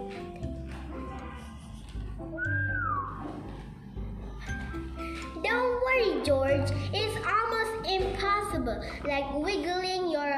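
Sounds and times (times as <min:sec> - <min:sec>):
soft music: 0:00.0 - 0:10.3
whistle attempt through pursed lips: 0:02.3 - 0:03.5
speech: 0:06.2 - 0:10.3.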